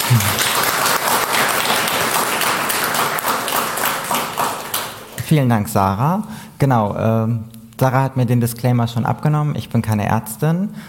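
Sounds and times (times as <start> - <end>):
audience applause greeting a speaker at a talk: 0.0 - 5.2
speech: 0.1 - 0.4, 5.3 - 10.8.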